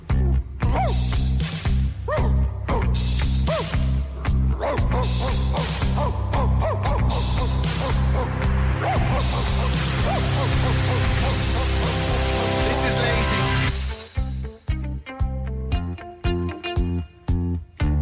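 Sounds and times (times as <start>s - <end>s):
busy music: 0.0s - 18.0s
dog barking and yipping: 0.7s - 1.0s, 2.1s - 2.9s, 3.5s - 3.9s, 4.5s - 12.2s.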